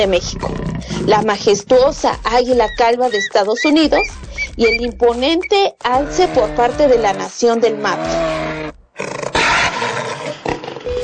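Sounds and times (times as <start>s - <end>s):
jaguar roaring: 0.0s - 1.8s, 6.0s - 10.6s
speech: 0.0s - 8.4s.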